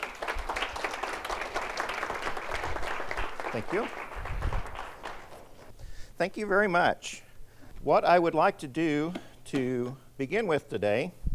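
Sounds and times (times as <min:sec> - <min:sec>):
crowd applauding to welcome a speaker: 0:00.0 - 0:05.7
speech: 0:03.5 - 0:04.5, 0:06.2 - 0:07.2, 0:07.8 - 0:11.2.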